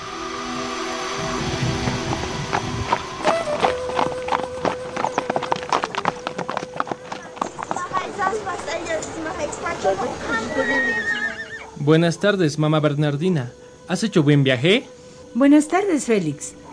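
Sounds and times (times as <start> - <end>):
horse hooves clip-clopping on a hard surface: 1.3 - 11.8
murmur of voices: 7.2 - 12.2
horse neighing: 10.2 - 12.0
speech: 11.9 - 16.6.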